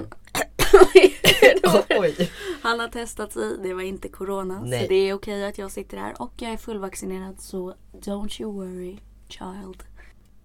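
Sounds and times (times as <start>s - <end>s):
speech: 0.0s - 9.9s
harsh coughing: 0.3s - 2.6s.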